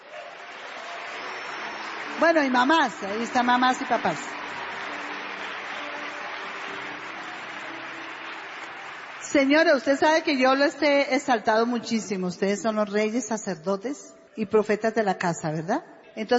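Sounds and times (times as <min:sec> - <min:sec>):
crowd applause for the parents: 0:00.0 - 0:10.8
speech: 0:02.2 - 0:04.3, 0:09.3 - 0:16.3.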